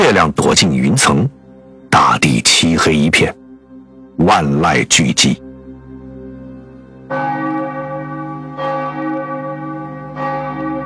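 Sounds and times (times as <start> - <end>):
speech: 0.2 - 3.4, 4.2 - 5.4
village church bell striking at night: 7.0 - 10.8.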